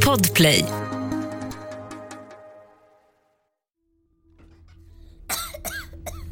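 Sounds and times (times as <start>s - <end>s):
speech: 0.1s - 0.8s
girl lying in a small wooden bed coughing violently: 5.3s - 6.2s.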